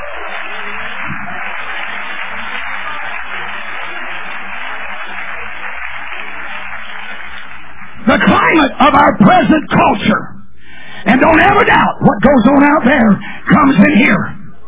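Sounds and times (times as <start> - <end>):
large crowd applauding: 0.0 - 9.1
speech: 8.2 - 10.4, 11.0 - 14.3.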